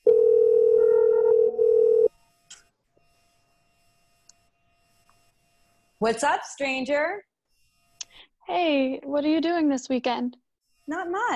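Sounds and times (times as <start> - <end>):
steady loud electronic phone tone: 0.0 - 2.1
speech: 6.0 - 7.3, 8.2 - 11.3.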